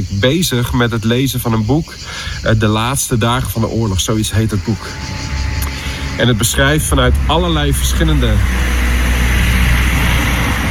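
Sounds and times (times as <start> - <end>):
speech: 0.0 - 5.3, 6.2 - 8.8
moped or small car driving past: 3.1 - 10.7.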